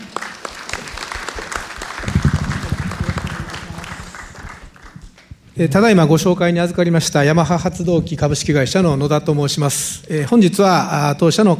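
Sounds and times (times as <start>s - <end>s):
audience applause of many hands clapping: 0.0s - 5.3s
speech: 5.6s - 11.5s.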